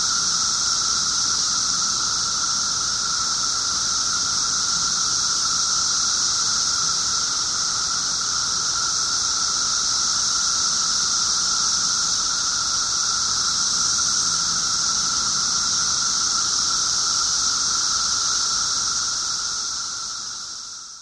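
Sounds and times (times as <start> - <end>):
periodical 17-year cicadas in a dense unbroken chorus: 0.0 - 20.9.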